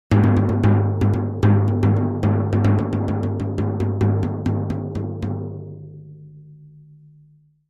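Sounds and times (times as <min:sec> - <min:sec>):
long battle tom drum hits: 0:00.1 - 0:05.6.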